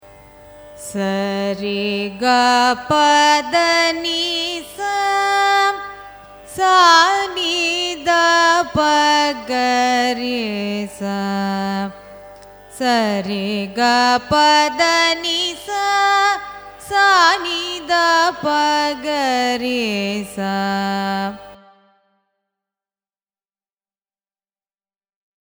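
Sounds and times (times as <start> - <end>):
carnatic music raga ascending and descending scale: 0.0 - 22.2.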